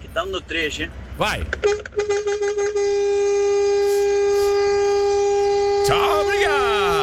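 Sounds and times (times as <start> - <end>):
speech: 0.2 - 4.0, 5.8 - 7.0
truck air horn honking: 1.6 - 7.0.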